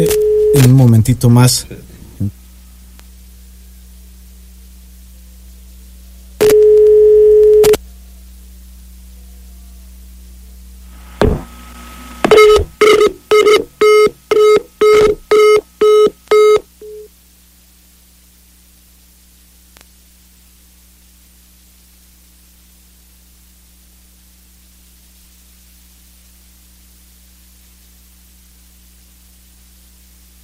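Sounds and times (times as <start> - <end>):
telephone line tone during dialling: 0.0 - 0.8, 6.4 - 7.8, 12.2 - 17.1
faint low hum: 0.0 - 30.4
speech: 0.6 - 2.4.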